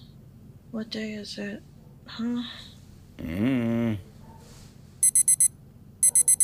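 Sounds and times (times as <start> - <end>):
speech: 0.7 - 4.1
alarm clock beeping with sharp high-pitched tones: 5.0 - 6.4.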